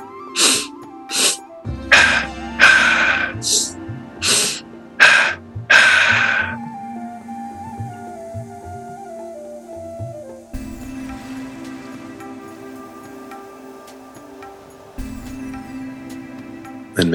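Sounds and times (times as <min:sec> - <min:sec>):
sharp forceful breaths in pulse breathwork: 0:00.4 - 0:06.6.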